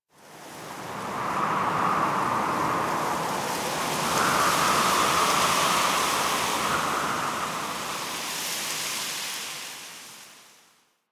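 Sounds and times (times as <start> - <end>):
medium night wind gust: 0.7 - 9.2.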